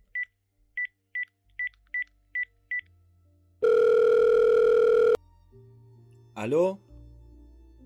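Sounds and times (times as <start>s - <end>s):
sustained telephone ringing tone on the line: 3.6s - 5.2s
speech: 6.4s - 6.8s.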